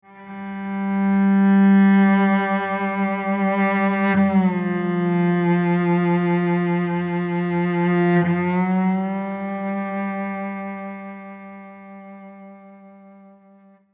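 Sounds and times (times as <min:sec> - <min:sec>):
cello melancholy tone: 0:00.0 - 0:13.9.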